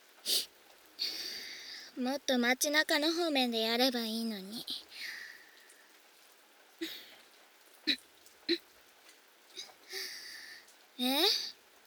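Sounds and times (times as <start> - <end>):
rain falling: 0.0 - 11.8
speech: 2.0 - 4.9, 11.0 - 11.5.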